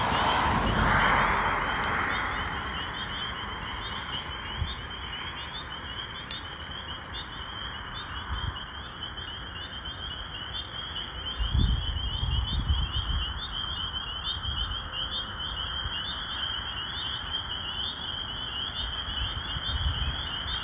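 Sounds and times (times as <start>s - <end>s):
spring peeper frogs chorus calling: 0.0s - 20.6s.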